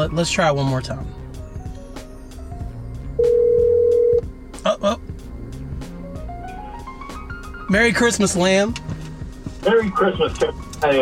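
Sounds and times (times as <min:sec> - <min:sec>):
speech: 0:00.0 - 0:01.2, 0:07.7 - 0:08.9, 0:09.6 - 0:11.0
phone call ringback tone: 0:03.2 - 0:04.3.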